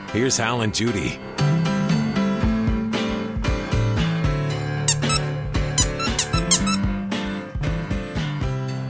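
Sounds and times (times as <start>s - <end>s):
speech: 0.1s - 1.5s
music with a low bass line: 1.2s - 8.8s
dog's rubber squeaky toy squeaking: 4.9s - 6.8s.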